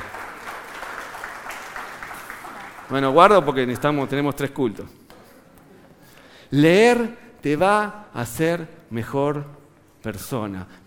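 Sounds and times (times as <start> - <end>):
crowd clapping: 0.0 - 3.9
speech: 2.9 - 5.0, 6.5 - 10.8.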